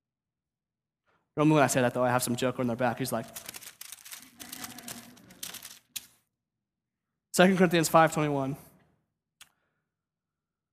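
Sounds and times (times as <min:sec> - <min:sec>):
speech: 0:01.4 - 0:03.6, 0:07.4 - 0:08.6
thin pages of physical Bibles being turned: 0:03.0 - 0:06.2.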